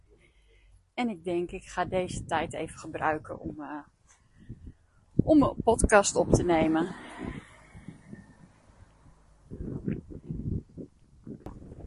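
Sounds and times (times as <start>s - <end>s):
speech: 1.0s - 4.0s, 5.2s - 7.3s
gusty outdoor wind buffeting the microphone: 1.7s - 3.7s, 4.4s - 11.8s.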